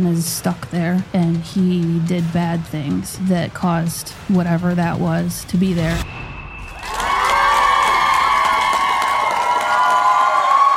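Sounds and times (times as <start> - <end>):
speech: 0.0 - 6.3
live audience cheering and shouting: 6.7 - 10.7.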